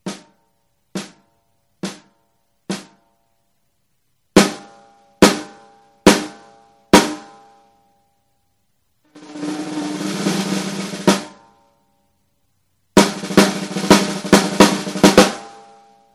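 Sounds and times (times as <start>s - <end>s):
drumline playing on radio: 9.2s - 11.3s, 13.0s - 15.5s.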